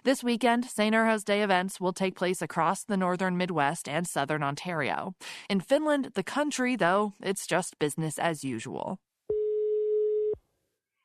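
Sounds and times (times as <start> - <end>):
speech: 0.0 - 9.1
electronic telephone ringing tone on a call to a pub in Helsinki Finland: 9.3 - 10.4.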